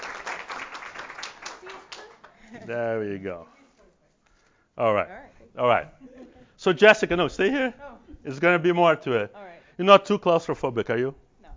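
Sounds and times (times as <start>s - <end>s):
audience clapping: 0.0s - 2.5s
speech: 2.5s - 3.6s, 4.8s - 11.2s.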